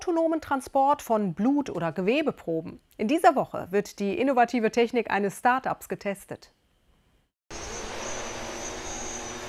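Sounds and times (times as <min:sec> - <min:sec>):
speech: 0:00.1 - 0:06.6
delivery drone rotors buzzing on takeoff: 0:07.5 - 0:09.4.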